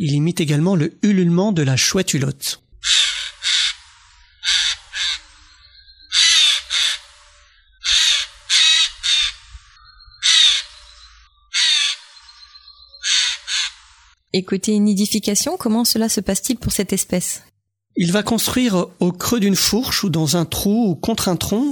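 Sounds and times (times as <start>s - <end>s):
speech: 0.0s - 3.0s, 14.3s - 21.6s
Eurasian jay harsh screeching calls: 2.7s - 14.2s.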